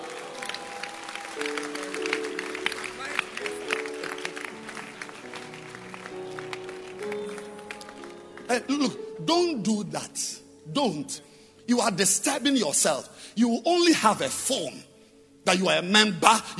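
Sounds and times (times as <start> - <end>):
audience clapping hands: 0.0 - 9.1
speech: 8.6 - 16.5.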